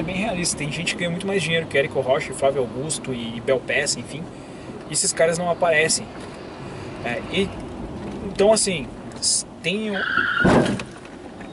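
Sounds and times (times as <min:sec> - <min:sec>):
speech: 0:00.0 - 0:06.4, 0:07.0 - 0:07.6, 0:08.4 - 0:10.8
car tires screeching in a skid: 0:04.2 - 0:11.5
car crunching into a parked car: 0:10.2 - 0:11.0.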